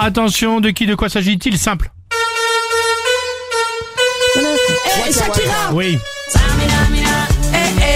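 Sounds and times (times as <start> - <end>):
speech: 0.0 - 2.0, 4.7 - 7.8
car horns blaring to pick out a recognizable tune: 2.1 - 7.3.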